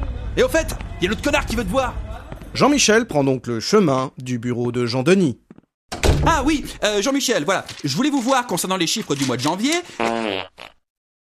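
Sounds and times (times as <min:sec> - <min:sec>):
speech: 0:00.4 - 0:05.4, 0:06.3 - 0:10.8
loud fart: 0:09.9 - 0:10.9.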